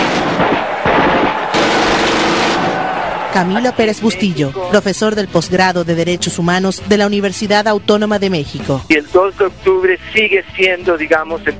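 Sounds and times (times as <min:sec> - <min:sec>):
army gunfire bursts on a student demonstration in the Plaza de las Tres Culturas, Tlatelolco: 0:00.0 - 0:03.3
speech: 0:03.4 - 0:11.5.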